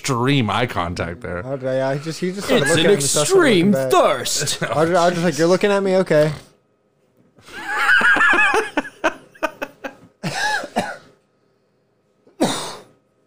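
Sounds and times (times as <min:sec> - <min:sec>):
speech: 0:00.0 - 0:06.5
laughter: 0:07.4 - 0:10.4
person coughing in a long raspy fit: 0:10.2 - 0:11.2, 0:12.3 - 0:13.0.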